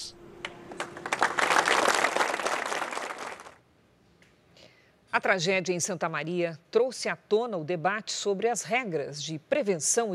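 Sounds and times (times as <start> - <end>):
crowd applauding: 0.4 - 3.6
speech: 5.2 - 10.1.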